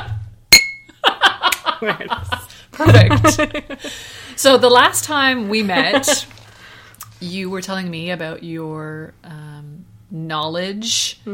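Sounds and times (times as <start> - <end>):
single bright glass clink: 0.5 - 1.0
short bursts of laughter from voices: 1.0 - 4.0, 5.6 - 6.4
speech: 1.8 - 6.4, 7.2 - 11.3.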